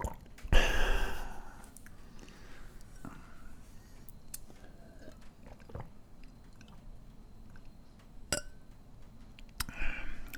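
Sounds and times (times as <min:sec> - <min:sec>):
person drinking half-filtered water from a glass: 0:00.0 - 0:01.6, 0:04.8 - 0:06.0.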